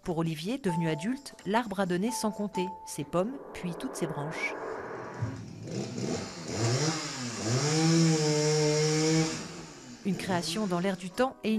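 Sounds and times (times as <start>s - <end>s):
speech: 0.0s - 4.6s, 5.2s - 8.5s, 10.0s - 11.5s
chainsaw engine revving: 5.3s - 10.2s.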